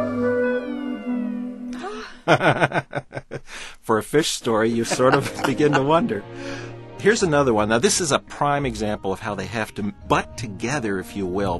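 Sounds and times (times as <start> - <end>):
sustained synthetic tone in a piece of music: 0.0 - 1.8, 4.9 - 6.3
laughter: 1.9 - 3.4, 4.7 - 6.2
speech: 2.3 - 11.5.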